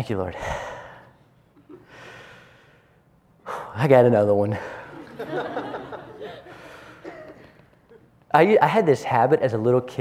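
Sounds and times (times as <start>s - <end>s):
speech: 0.0s - 0.7s, 3.8s - 5.7s, 8.3s - 9.9s
deep breath drawn and let out: 0.4s - 3.8s, 6.4s - 7.2s
laughter: 4.8s - 8.0s.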